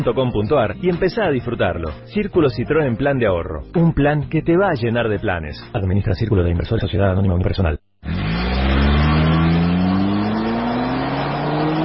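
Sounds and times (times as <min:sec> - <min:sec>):
speech: 0:00.0 - 0:07.8
car engine revving at high rpm: 0:08.0 - 0:11.8.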